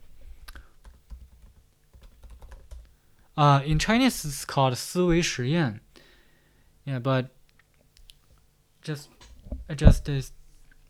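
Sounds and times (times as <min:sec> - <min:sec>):
typing on a computer keyboard: 0:00.8 - 0:02.9
speech: 0:03.4 - 0:05.8, 0:06.9 - 0:07.4, 0:08.8 - 0:10.4.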